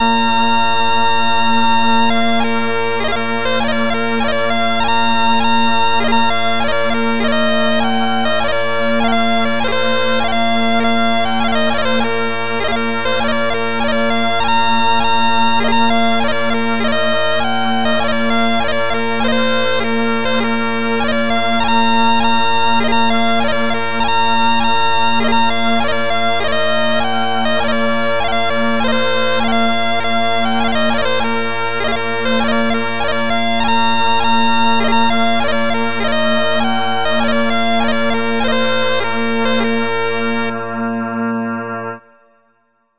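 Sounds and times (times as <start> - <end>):
bagpipe: 0.0 - 42.6.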